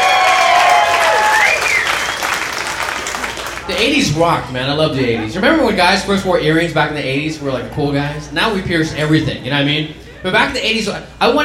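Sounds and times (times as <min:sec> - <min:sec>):
crowd clapping and cheering: 0:00.0 - 0:04.0
whistles and shouts: 0:00.1 - 0:02.6
speech: 0:03.8 - 0:11.4.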